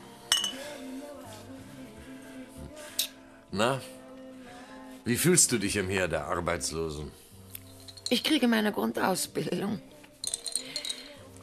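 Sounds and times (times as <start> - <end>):
drinking glasses clinking together in a toast: 0.2 - 0.8, 7.6 - 8.3, 10.2 - 11.2
speech: 3.5 - 4.0, 5.0 - 7.2, 8.1 - 9.9.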